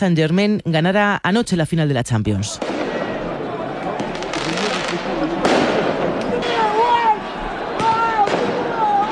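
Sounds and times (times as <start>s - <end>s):
speech: 0.0s - 2.8s
crowd voices roaring during riots: 2.6s - 9.0s
firecrackers banging during riots: 2.6s - 9.0s.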